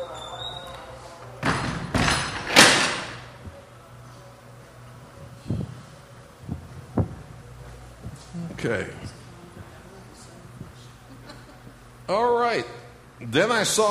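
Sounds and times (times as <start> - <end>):
door banging shut: 1.4 - 3.3
speech: 8.6 - 9.1, 12.1 - 13.8
laughter: 11.0 - 11.8.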